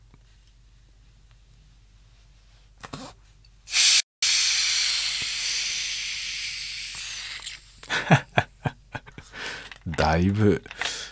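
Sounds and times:
Pepsi Mega Nama Zero soda bottle hissing and fizzing as opened: 0:03.7 - 0:07.8
laughter: 0:07.8 - 0:09.4
speech: 0:10.1 - 0:10.8.

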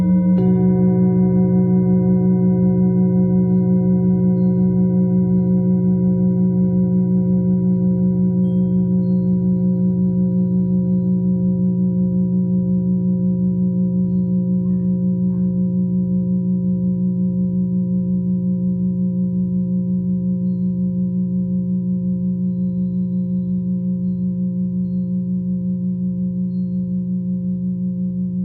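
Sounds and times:
singing bowl humming with a sustained tone: 0:00.0 - 0:28.4.

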